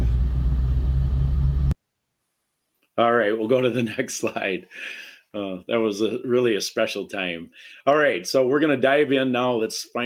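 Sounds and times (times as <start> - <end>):
car engine rumbling while being driven: 0.0 - 1.8
speech: 3.0 - 10.0.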